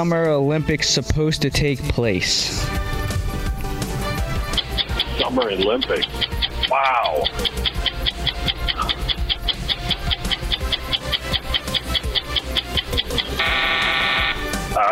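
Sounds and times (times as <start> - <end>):
speech: 0.0 - 2.9, 5.2 - 7.7
rapid ticking countdown beat: 3.4 - 14.9
harsh quiz time-up buzzer: 13.3 - 14.7.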